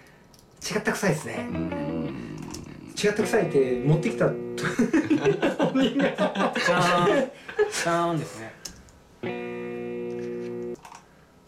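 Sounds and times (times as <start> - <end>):
speech: 0.7 - 2.3, 3.0 - 8.6, 9.2 - 9.4
acoustic guitar tone: 1.4 - 5.7, 9.2 - 10.8
laughter: 4.6 - 8.0.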